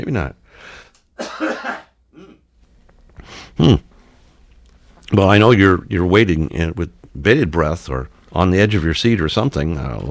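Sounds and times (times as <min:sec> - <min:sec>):
speech: 0:00.0 - 0:01.5, 0:03.6 - 0:03.9, 0:05.1 - 0:10.1
person coughing: 0:01.2 - 0:02.4
person clearing throat: 0:01.2 - 0:02.5, 0:03.6 - 0:03.9.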